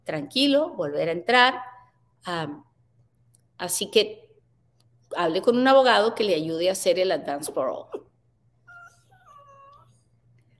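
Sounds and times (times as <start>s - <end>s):
speech: 0.1s - 2.7s, 3.6s - 4.2s, 5.1s - 8.1s
dog whimpering with high-pitched whines: 7.7s - 10.1s.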